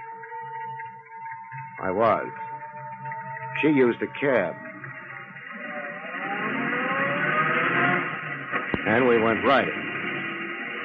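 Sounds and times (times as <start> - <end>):
car engine hum while driving: 0.1 - 10.8
speech: 1.8 - 2.4, 3.6 - 4.6, 8.9 - 9.7
car road noise: 3.3 - 10.8.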